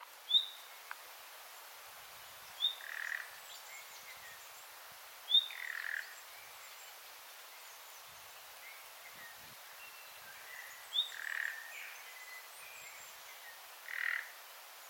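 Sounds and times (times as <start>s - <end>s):
steady hiss: 0.0s - 14.8s
common nightingale Luscinia megarhynchos calling with high whistle and rasping croak: 0.3s - 0.7s, 2.6s - 4.1s, 5.3s - 6.7s, 10.2s - 13.0s, 13.8s - 14.4s.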